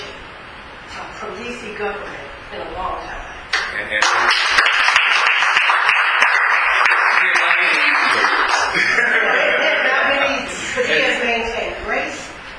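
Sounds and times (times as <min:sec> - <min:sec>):
speech: 0:01.2 - 0:04.8
crowd applauding: 0:03.5 - 0:09.1
laughter: 0:07.3 - 0:11.4.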